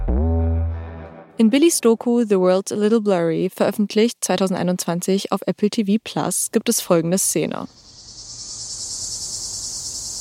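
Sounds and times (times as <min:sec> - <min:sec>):
speech: 0:01.4 - 0:07.9
cicadas chirping outside a house in the late evening: 0:07.6 - 0:10.1.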